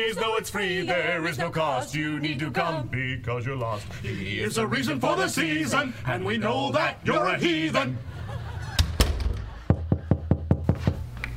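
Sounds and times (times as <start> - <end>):
speech: 0.0 - 8.3
laughter: 7.8 - 10.3
knocking on an old garage door: 8.9 - 11.0.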